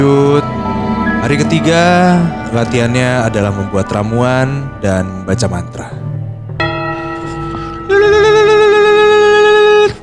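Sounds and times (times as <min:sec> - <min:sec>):
bell ringing: 0:00.0 - 0:05.8, 0:06.5 - 0:09.6
low hum: 0:00.0 - 0:08.0
speech: 0:01.2 - 0:06.0.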